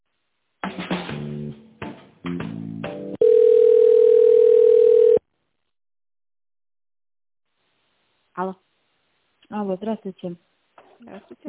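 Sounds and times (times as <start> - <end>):
long steady mid-pitched telephone line tone during call transfer: 3.2 - 5.2
speech: 8.4 - 8.6, 9.5 - 11.4.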